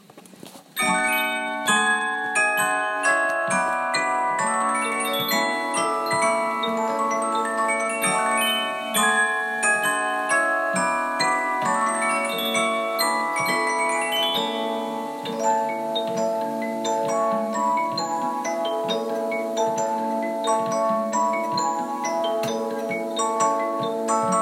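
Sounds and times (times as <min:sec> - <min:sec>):
Polyphon disc music box playing a wedding march: 0:00.8 - 0:24.3.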